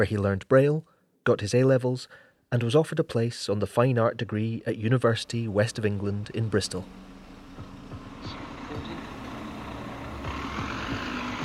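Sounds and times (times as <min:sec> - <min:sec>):
speech: 0:00.0 - 0:07.2
bus heavy engine rumbling along a street: 0:05.2 - 0:11.4
steady outdoor traffic noise: 0:05.3 - 0:11.4.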